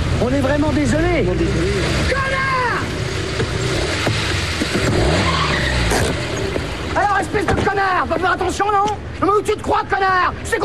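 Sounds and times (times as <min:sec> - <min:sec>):
road noise: 0:00.0 - 0:10.6
speech: 0:00.2 - 0:02.7, 0:07.0 - 0:10.6
tyres squealing as a car skids and clips a wing mirror: 0:01.8 - 0:09.0.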